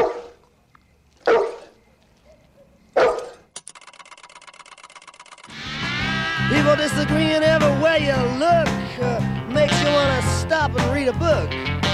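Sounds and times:
large dog giving loud deep barks: 0.0s - 0.4s, 1.2s - 3.5s
speech: 6.5s - 11.9s.

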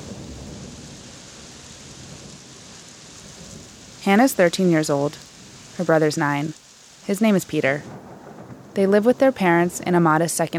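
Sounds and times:
low rolling rumble of thunder: 0.0s - 5.8s, 7.7s - 10.0s
steady dense rain hissing in Prague: 0.0s - 10.5s
speech: 4.0s - 8.0s, 8.8s - 10.5s.

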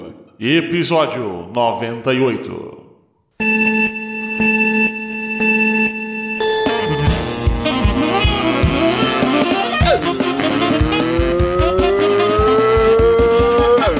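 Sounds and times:
speech: 0.4s - 2.8s
steady electronic tone: 3.4s - 8.1s
loud engine revving and shifting gears: 8.3s - 13.9s.

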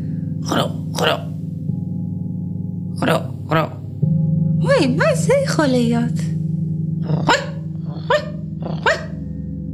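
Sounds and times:
steady low droning hum: 0.0s - 9.7s
speech: 5.2s - 6.3s, 7.1s - 7.4s
dog barking: 7.2s - 9.2s.

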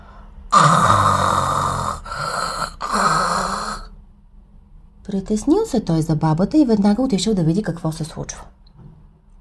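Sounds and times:
voice imitating loud snoring: 0.5s - 3.9s
speech: 5.1s - 8.6s.

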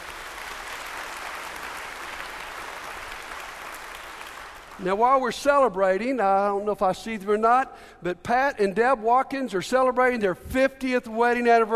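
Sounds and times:
church audience applause: 0.0s - 4.8s
speech: 4.8s - 11.7s.

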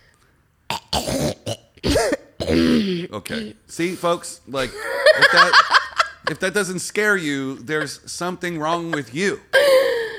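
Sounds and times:
exaggerated throat clearing: 0.7s - 3.6s
speech: 1.0s - 1.3s, 2.5s - 9.9s
laughter: 4.7s - 6.4s, 7.6s - 10.0s.

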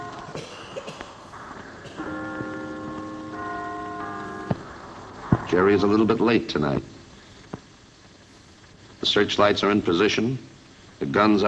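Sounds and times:
low steady outdoor hum: 0.0s - 11.4s
large clock bell in London striking eight o'clock: 2.0s - 4.6s
speech: 5.5s - 7.0s, 9.2s - 11.4s.

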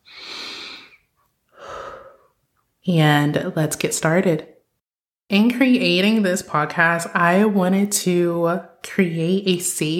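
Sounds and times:
person taking a deep breath: 0.0s - 2.4s
speech: 2.8s - 4.5s, 5.3s - 9.9s.

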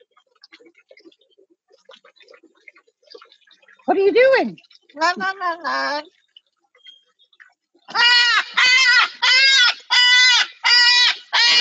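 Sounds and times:
speech: 3.9s - 6.2s
pet parrot's alarm call at a hawk: 7.9s - 11.6s.

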